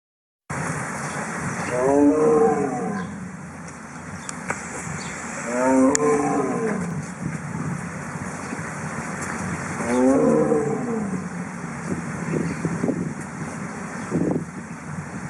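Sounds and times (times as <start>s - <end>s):
low rumbling background: 1.0s - 15.2s
Siberian tiger roaring: 1.7s - 3.2s, 5.4s - 7.0s, 9.8s - 11.5s.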